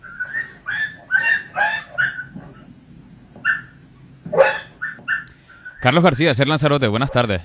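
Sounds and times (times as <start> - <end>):
dog yelping while being hit: 0.0 - 2.7, 3.3 - 5.9, 7.0 - 7.3
speech: 5.8 - 7.4.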